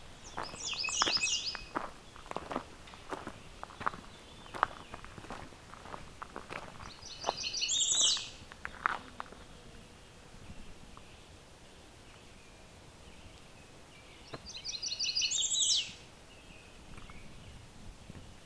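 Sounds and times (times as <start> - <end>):
American redstart singing song resembling a Blackburnian warbler: 0.0 - 6.0, 6.8 - 18.4
footsteps crunching: 0.2 - 9.5.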